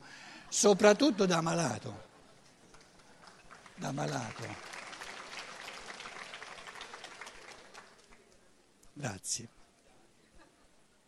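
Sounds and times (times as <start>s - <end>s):
speech: 0.6s - 2.1s, 3.8s - 4.7s, 9.0s - 9.6s
audience applauding with many hands clapping: 0.7s - 8.4s.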